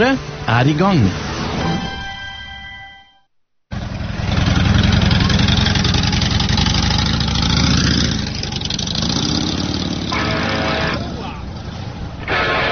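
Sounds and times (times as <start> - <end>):
speech: 0.0 - 1.7
motorcycle engine running: 3.7 - 12.6.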